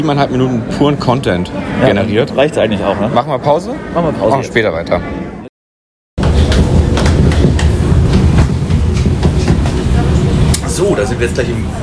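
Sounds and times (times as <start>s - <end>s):
speech: 0.0s - 5.4s, 11.0s - 11.8s
U-Bahn train wheels clicking over rail joints heard from inside the car: 6.2s - 10.9s
U-Bahn train rumbling in the rain: 6.2s - 11.8s.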